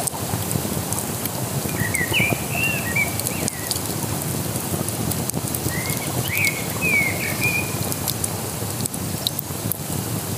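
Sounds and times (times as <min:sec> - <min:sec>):
campfire crackling on the Isar: 0:00.0 - 0:10.3
water rushing by a campfire on the Isar: 0:00.0 - 0:10.3
birds chirping: 0:01.6 - 0:04.4, 0:05.6 - 0:08.3.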